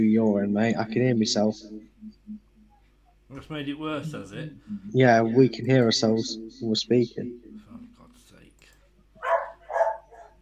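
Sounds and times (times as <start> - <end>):
speech: 0.0 - 1.9, 3.3 - 7.4
dog barking: 9.2 - 10.3.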